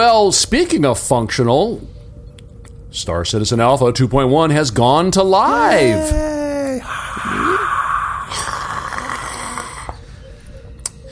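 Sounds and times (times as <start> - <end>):
speech: 0.0 - 2.0, 2.9 - 6.4
breathy voices hissing into microphones imitating a stadium crowd roar: 5.5 - 9.9.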